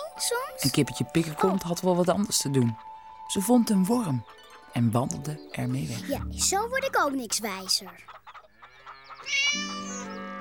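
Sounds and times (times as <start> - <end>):
speech: 0.2 - 8.2, 9.2 - 10.2
cat meowing: 9.2 - 10.3.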